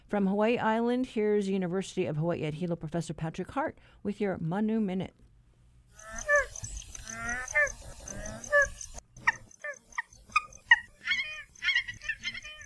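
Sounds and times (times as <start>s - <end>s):
speech: 0.1s - 5.2s
Hawaiian geese nene honking and grunting: 6.0s - 12.6s
steady hiss: 6.0s - 12.6s.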